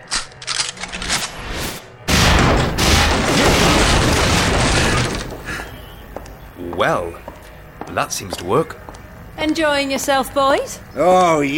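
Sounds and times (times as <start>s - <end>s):
gunfire: 2.1s - 5.6s
speech: 6.8s - 7.3s, 7.9s - 11.5s.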